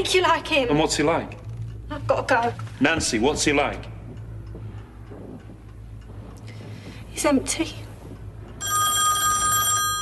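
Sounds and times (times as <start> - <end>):
speech: 0.0 - 3.9, 7.2 - 7.8
low hum: 0.0 - 10.0
old-fashioned telephone bell ringing: 8.6 - 10.0.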